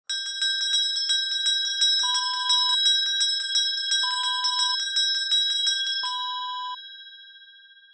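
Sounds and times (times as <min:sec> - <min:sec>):
handbell ringing: 0:00.1 - 0:07.7.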